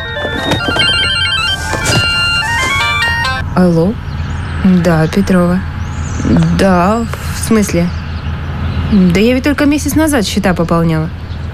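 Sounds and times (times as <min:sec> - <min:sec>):
mobile phone ringtone with a bright electronic melody: 0:00.0 - 0:03.4
speech: 0:03.6 - 0:08.0, 0:08.9 - 0:11.2.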